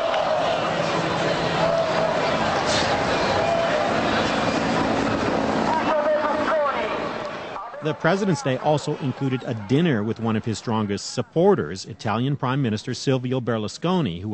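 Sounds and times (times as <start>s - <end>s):
police helicopters droning overhead: 0.0s - 9.2s
large protest crowd murmuring and chanting: 0.0s - 13.5s
speech: 7.8s - 14.3s.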